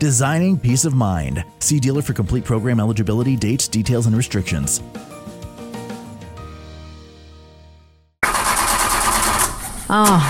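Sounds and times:
speech: 0.0 - 5.2, 9.9 - 10.2
car engine cranking, failing to start: 8.2 - 10.2.

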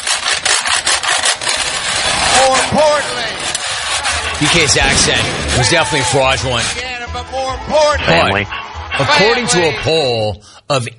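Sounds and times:
wooden spoons scraping rhythmically across a washboard: 0.0 - 4.8
speech: 4.4 - 10.9.

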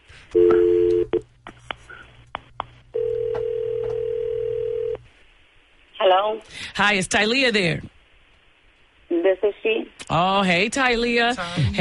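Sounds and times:
speech: 0.3 - 0.6, 6.3 - 7.9, 9.3 - 11.7
long dual-tone telephone beep: 0.4 - 1.1, 3.0 - 5.0.

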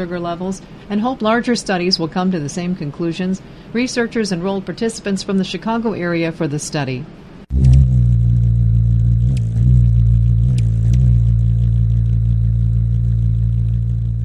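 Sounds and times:
speech: 0.0 - 7.2
ruby-throated hummingbird wings humming during migration season in Indiana: 7.5 - 14.2
high ticks: 9.2 - 14.2.

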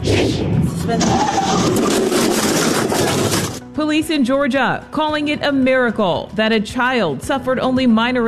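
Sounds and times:
indistinct voices: 0.0 - 3.4
speech: 0.2 - 2.0, 3.8 - 8.2
car engine roaring at high speed during a highway chase: 0.4 - 3.6.

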